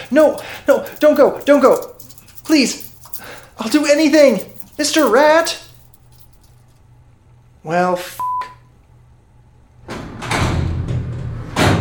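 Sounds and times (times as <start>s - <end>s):
speech: 0.1s - 5.6s, 7.6s - 8.3s
heavy door dragging open: 9.9s - 11.7s.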